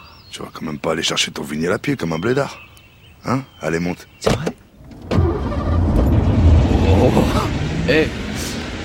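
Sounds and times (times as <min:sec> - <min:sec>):
speech: 0:00.4 - 0:04.6, 0:07.0 - 0:08.5
Peugeot 504 station wagon engine starting and rumbling low: 0:04.7 - 0:08.8.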